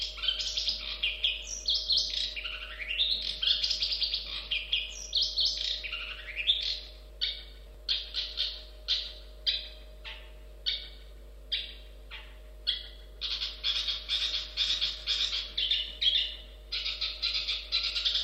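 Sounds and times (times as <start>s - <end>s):
long-tailed shrike song with scratchy warbled phrases and bright notes: 0.0s - 18.2s
steady low hum: 0.0s - 18.2s.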